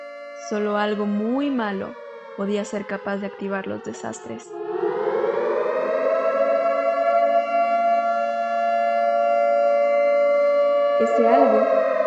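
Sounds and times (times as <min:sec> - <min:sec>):
civil defense siren wailing: 0:00.0 - 0:12.0
speech: 0:00.4 - 0:04.7, 0:11.0 - 0:11.9.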